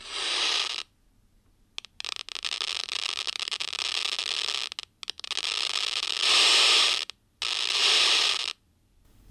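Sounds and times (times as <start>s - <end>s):
sonified cultured neuron seizure activity, crackling static through a loudspeaker: 0.0s - 0.9s, 1.8s - 8.6s
sparse popping clicks: 1.8s - 6.2s.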